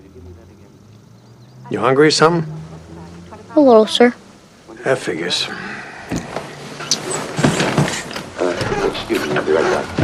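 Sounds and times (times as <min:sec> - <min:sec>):
speech: 0:01.7 - 0:02.6, 0:03.6 - 0:04.2, 0:04.8 - 0:05.7
items clunking and rattling as pulled from a refrigerator: 0:06.1 - 0:10.0
refrigerator door opening: 0:06.8 - 0:10.0.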